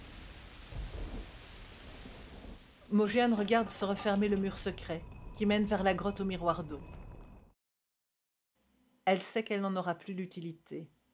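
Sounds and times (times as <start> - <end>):
low rumble of thunder: 0.0 - 2.7
steady rain hissing in a thunderstorm: 0.0 - 2.9
speech: 2.9 - 7.0, 9.1 - 11.0.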